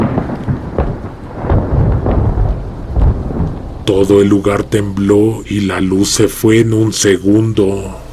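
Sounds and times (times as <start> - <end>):
loud thunder rolling and cracking in a storm: 0.0 - 6.4
rain hissing: 0.0 - 8.1
speech: 3.9 - 8.0.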